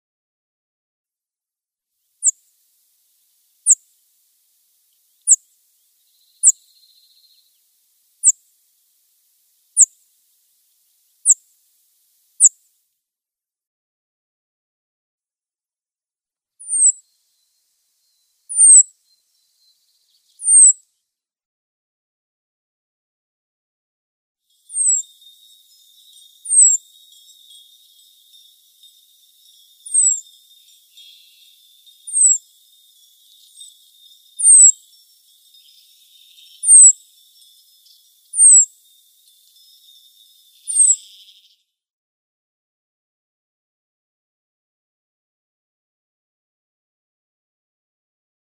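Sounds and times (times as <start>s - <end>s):
Cirl Bunting calls: 16.6s - 17.0s, 18.5s - 20.8s, 24.6s - 41.6s.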